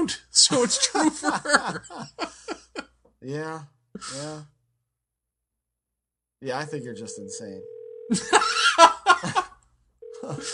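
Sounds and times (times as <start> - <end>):
speech: 0.0 - 2.6, 3.2 - 4.6, 6.4 - 9.4, 10.2 - 10.5
bursts of laughter from people: 0.6 - 2.9, 8.1 - 9.6
steady electronic phone ring tone: 6.6 - 8.4, 10.0 - 10.5.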